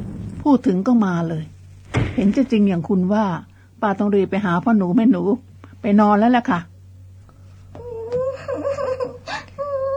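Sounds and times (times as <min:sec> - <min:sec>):
low steady hum: 0:00.0 - 0:09.9
speech: 0:00.4 - 0:01.6, 0:02.2 - 0:06.7
young child whimpering and wailing: 0:07.8 - 0:09.9.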